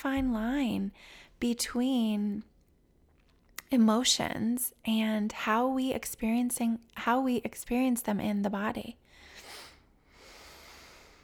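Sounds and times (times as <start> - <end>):
speech: 0.0 - 2.5, 3.7 - 9.3
excited person breathing heavily: 9.2 - 11.2.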